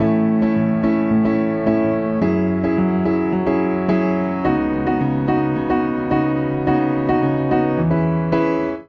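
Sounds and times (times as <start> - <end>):
upright piano chord progression in A major: 0.0 - 8.8.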